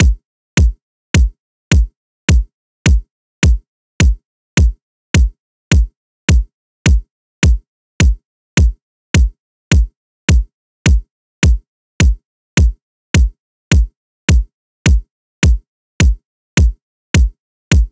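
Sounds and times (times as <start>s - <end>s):
kick drum: 0.0s - 17.9s.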